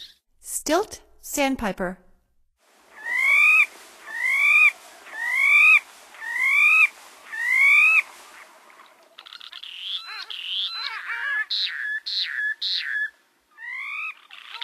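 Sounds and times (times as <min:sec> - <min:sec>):
Stilt Sandpiper in North America: 0:02.7 - 0:12.4.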